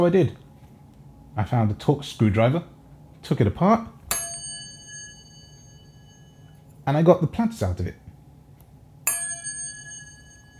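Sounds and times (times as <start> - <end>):
speech: 0.0 - 0.4, 1.4 - 4.0, 6.9 - 8.0
metal hard drive platters hung as a wind chime ringing: 4.1 - 6.9, 9.1 - 10.5.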